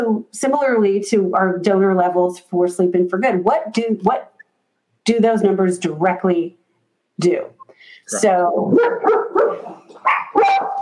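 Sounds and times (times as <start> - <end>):
speech: 0.0 - 4.3, 5.0 - 6.6, 7.2 - 10.8
dog barking in sharp high yips: 8.7 - 10.8.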